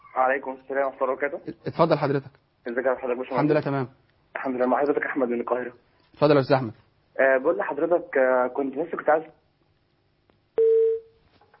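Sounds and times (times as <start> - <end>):
speech: 0.2 - 9.4
telephone line tone after a dropped call: 10.6 - 11.1.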